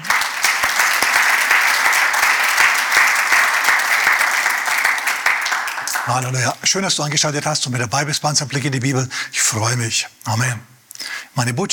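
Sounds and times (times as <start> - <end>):
audience applause: 0.0 - 6.6
speech: 6.1 - 10.8, 11.4 - 11.7.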